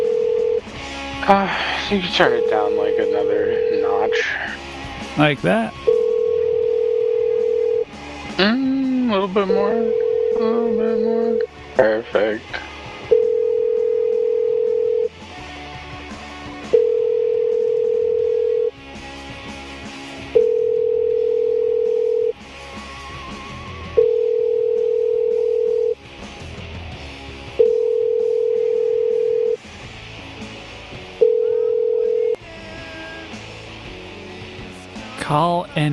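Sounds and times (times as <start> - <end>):
ringback tone of an outgoing telephone call waiting for pickup: 0.0 - 0.8, 2.0 - 4.2, 5.7 - 8.0, 9.5 - 11.4, 13.0 - 15.2, 16.6 - 18.7, 20.2 - 22.4, 23.6 - 26.0, 27.5 - 29.7, 31.1 - 32.4
speech: 1.3 - 4.6, 5.2 - 5.9, 8.4 - 12.6.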